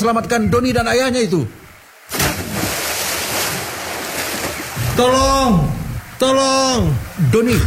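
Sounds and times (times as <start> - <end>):
speech: 0.0 - 1.6, 5.0 - 7.6
rushing water of a strong river current: 1.6 - 7.6.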